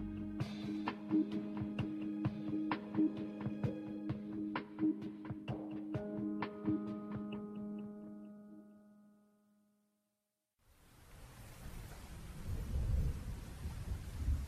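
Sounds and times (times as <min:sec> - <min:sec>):
short musical chord: 0:00.0 - 0:09.4
deep rolling thunder rumbling: 0:11.6 - 0:14.4.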